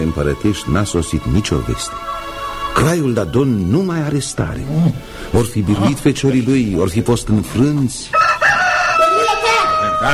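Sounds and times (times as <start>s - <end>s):
speech: 0.1s - 8.2s
rooster crowing in a strained wavering call: 8.1s - 10.1s.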